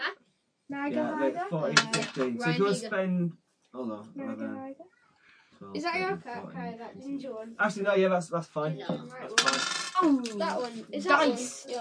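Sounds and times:
speech: 0:00.7 - 0:05.0, 0:05.6 - 0:11.7
dice rolling on a hard table for damage in a game: 0:09.3 - 0:10.8.

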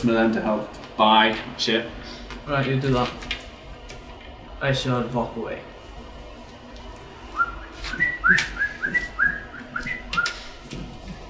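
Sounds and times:
speech: 0:00.0 - 0:03.3, 0:04.6 - 0:05.7, 0:07.9 - 0:09.0
person whistling through teeth: 0:07.4 - 0:10.5.

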